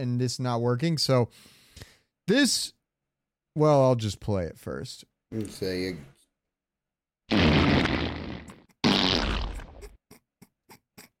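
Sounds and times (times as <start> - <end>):
speech: 0.0 - 2.8, 3.6 - 6.1
long loud rumbling fart sound effect blasts: 7.3 - 9.9.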